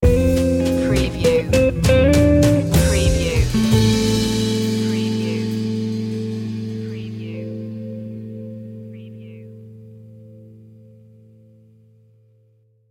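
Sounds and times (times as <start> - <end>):
dusty jazz club music sting: 0.0 - 9.5.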